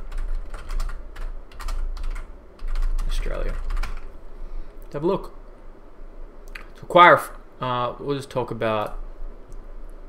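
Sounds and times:
typing on a computer keyboard: 0.0 - 4.1
speech: 3.2 - 3.7, 4.9 - 5.4, 6.8 - 9.0.

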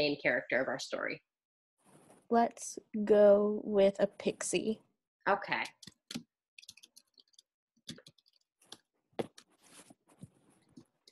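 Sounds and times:
speech: 0.0 - 1.3, 2.3 - 6.0
typing on a computer keyboard: 5.6 - 9.6.

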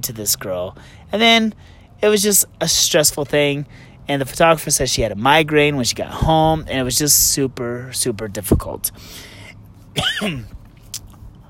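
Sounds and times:
speech: 0.0 - 9.4, 10.0 - 10.6
cough: 10.0 - 10.5.

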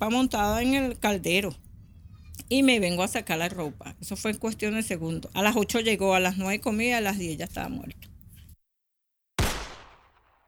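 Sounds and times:
speech: 0.0 - 1.6, 2.4 - 8.1
single sharp gunshot: 9.4 - 10.4.

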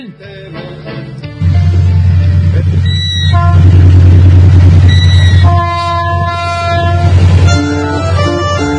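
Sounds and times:
train arriving and rumbling: 0.7 - 8.7
train horn blasts: 2.8 - 8.7.

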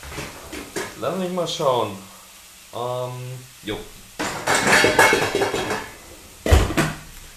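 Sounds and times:
speech: 1.0 - 2.1, 2.7 - 4.0, 4.6 - 5.9
sharper, louder clank of metal on metal: 3.8 - 7.0
lid set onto a cooking pot of water heating on the stove: 4.2 - 6.0.

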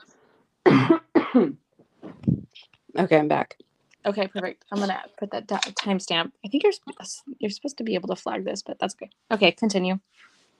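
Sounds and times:
person coughing harshly: 0.7 - 1.6
speech: 0.9 - 1.6, 3.0 - 10.3.

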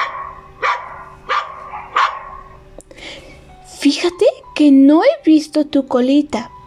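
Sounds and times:
dog barking: 0.0 - 2.6
speech: 4.0 - 6.6.

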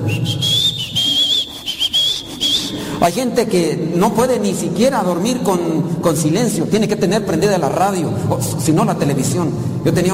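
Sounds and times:
person whistling a melody: 0.0 - 3.0
speech: 3.0 - 10.1.

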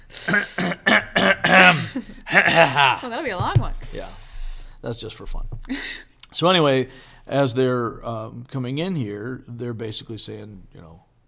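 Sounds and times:
coughing and throat clearing: 0.2 - 3.0
speech: 0.3 - 0.8, 2.0 - 4.2, 4.8 - 11.1.

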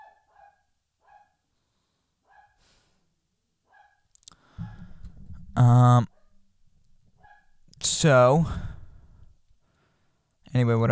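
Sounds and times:
dog barking: 0.0 - 1.5, 2.2 - 2.6, 3.6 - 4.9, 7.2 - 7.6
speech: 5.6 - 6.1, 8.0 - 8.6, 10.6 - 10.8.

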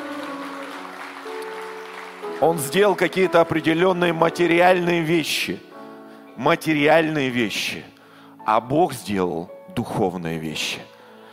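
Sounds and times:
crowd applauding the Lord: 0.0 - 4.3
speech: 2.4 - 5.7, 6.4 - 7.9, 8.5 - 10.9.

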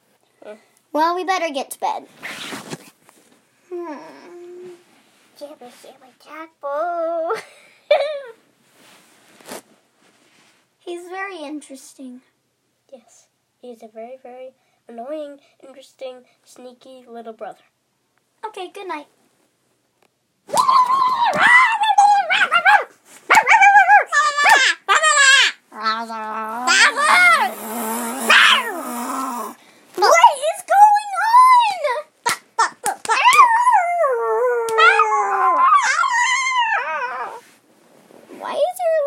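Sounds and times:
speech: 0.5 - 2.6, 3.7 - 4.4, 5.4 - 8.1, 10.9 - 12.3, 12.9 - 17.7, 18.4 - 19.2
child barking and howling in imitation of a dog: 20.5 - 37.4.

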